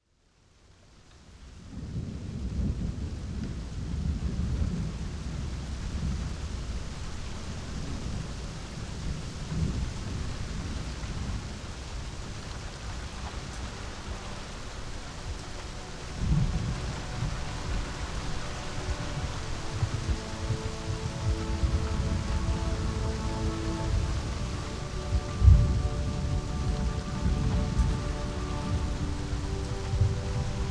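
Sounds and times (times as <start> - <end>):
rain: 0.0 - 30.6.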